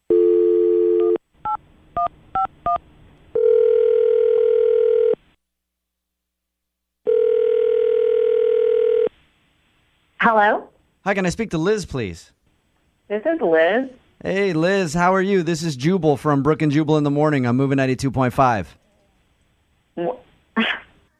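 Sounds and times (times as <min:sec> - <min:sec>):
telephone dial tone: 0:00.1 - 0:01.2, 0:03.4 - 0:05.2, 0:07.1 - 0:09.1
speech: 0:10.4 - 0:12.4, 0:13.1 - 0:18.8, 0:20.0 - 0:20.8.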